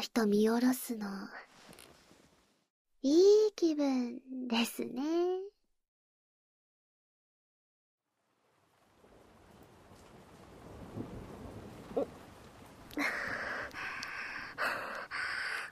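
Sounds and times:
speech: 0:00.0 - 0:01.8, 0:03.0 - 0:05.5
rain hissing: 0:08.1 - 0:15.7
loud crack of thunder: 0:08.5 - 0:14.6.

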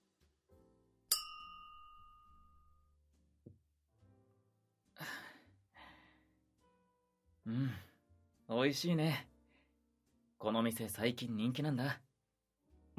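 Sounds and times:
glasses clinking in a toast at a restaurant: 0:01.1 - 0:02.8
speech: 0:07.5 - 0:07.9, 0:08.5 - 0:09.3, 0:10.4 - 0:12.0.

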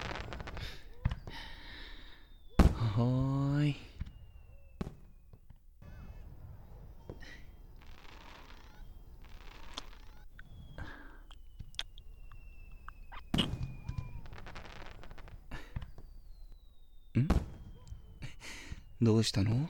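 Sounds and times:
fireworks with whistling launches and crackling, booming bursts: 0:00.0 - 0:19.6
speech: 0:03.0 - 0:03.9, 0:19.0 - 0:19.6.

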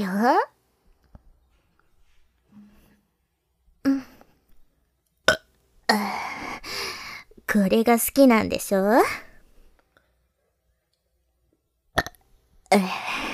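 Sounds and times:
speech: 0:00.0 - 0:00.5, 0:07.5 - 0:09.3, 0:12.7 - 0:13.2
person burping: 0:12.0 - 0:13.3.

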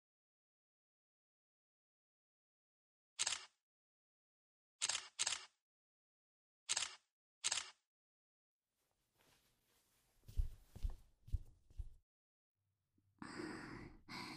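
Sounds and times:
camera shutter clicking while photos are taken: 0:03.2 - 0:03.6, 0:04.8 - 0:05.6, 0:06.7 - 0:07.8
soft breaths and sighs: 0:13.2 - 0:14.3.

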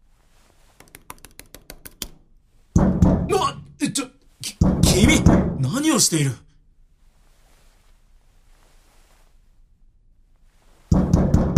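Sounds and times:
heavy banging on a metal elevator door: 0:02.8 - 0:03.3, 0:04.6 - 0:05.6, 0:10.9 - 0:11.5
speech: 0:05.0 - 0:06.5.

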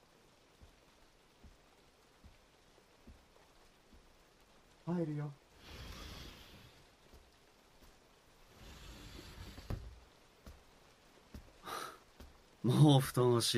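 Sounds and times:
steady rain at nightfall: 0:00.0 - 0:13.5
rain drips and taps: 0:00.5 - 0:04.8, 0:09.4 - 0:12.5
speech: 0:04.9 - 0:05.4, 0:12.6 - 0:13.5.

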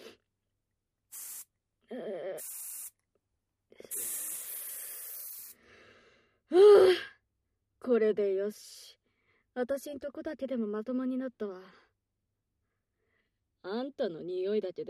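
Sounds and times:
odor-eliminating spray bursts hissing: 0:01.1 - 0:01.5, 0:02.4 - 0:03.0, 0:03.9 - 0:05.6
speech: 0:07.9 - 0:08.8, 0:09.6 - 0:11.9, 0:13.6 - 0:14.8.

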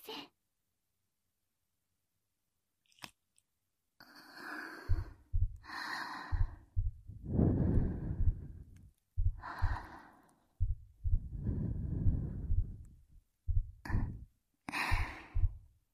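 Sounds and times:
heartbeat thumps heard with chests pressed together: 0:04.8 - 0:10.0, 0:10.6 - 0:15.8.

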